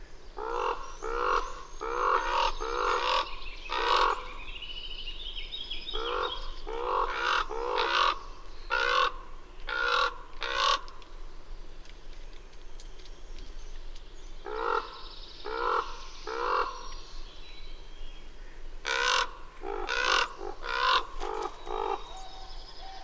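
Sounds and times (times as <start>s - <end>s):
bird cawing hoarsely: 0.4s - 4.4s, 6.0s - 11.0s, 14.5s - 16.9s, 18.4s - 23.0s.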